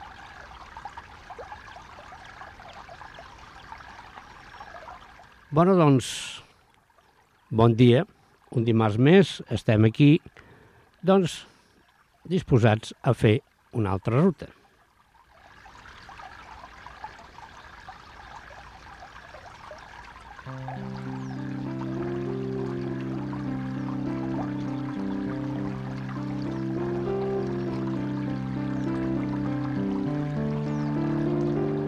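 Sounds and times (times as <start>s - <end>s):
water flowing at the river spring source of the Bastareny river: 0.0s - 31.8s
speech: 5.5s - 6.3s, 7.5s - 10.3s, 11.0s - 11.5s, 12.2s - 14.6s
sustained tonal music: 20.5s - 31.8s.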